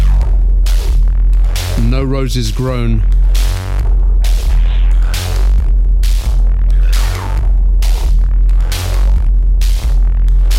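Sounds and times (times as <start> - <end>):
loud electronic music track with heavy throbbing bass: 0.0 - 10.5
speech: 2.0 - 3.7.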